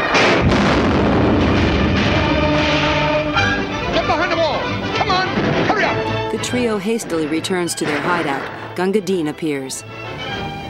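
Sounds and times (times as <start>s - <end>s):
gunshot fired from a rooftop: 0.0s - 3.6s
heavy booming blasts: 0.0s - 8.8s
speech: 6.5s - 10.4s.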